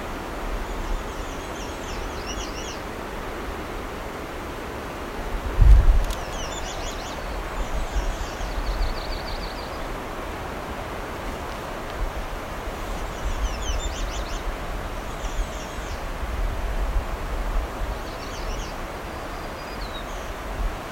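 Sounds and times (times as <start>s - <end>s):
wind: 0.0s - 20.9s
myrtle warbler singing a slow lazy warble: 0.6s - 2.9s, 6.1s - 10.0s, 13.1s - 16.0s, 17.9s - 20.4s.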